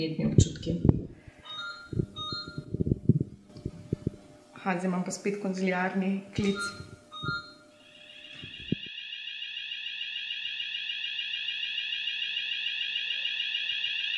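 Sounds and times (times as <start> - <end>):
speech: 0.0 - 0.5, 4.7 - 6.8
hospital corridor alarm warning of COVID patient transport: 1.3 - 3.0, 6.4 - 14.1.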